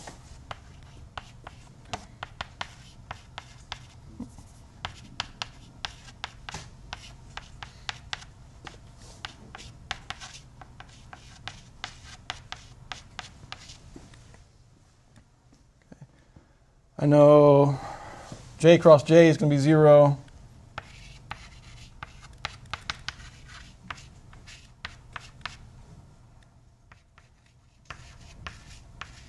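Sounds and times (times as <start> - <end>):
pen strokes and taps of handwriting: 0.5 - 1.6, 2.2 - 4.0, 4.8 - 8.3, 9.2 - 13.8, 20.8 - 25.6, 26.9 - 29.2
speech: 17.0 - 17.8, 18.6 - 20.2.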